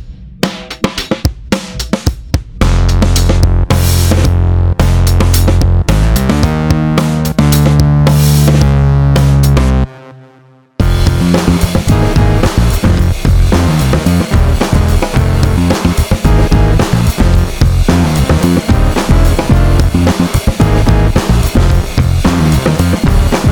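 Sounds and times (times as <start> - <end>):
bombstep backing track at 110 bpm: 0.5 - 9.9, 10.8 - 23.5.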